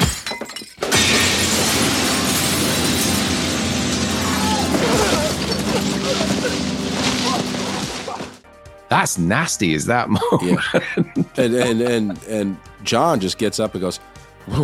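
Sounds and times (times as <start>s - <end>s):
bottle smashing: 0.0s - 8.4s
window glass shattering: 0.0s - 8.4s
speech: 9.0s - 14.6s
laughter: 10.1s - 12.5s.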